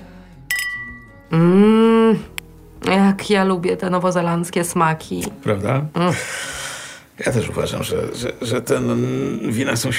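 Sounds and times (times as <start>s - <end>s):
wine glasses clinking in a toast over dinner: 0.5s - 1.2s
speech: 1.3s - 2.3s, 3.2s - 6.5s, 7.2s - 9.9s.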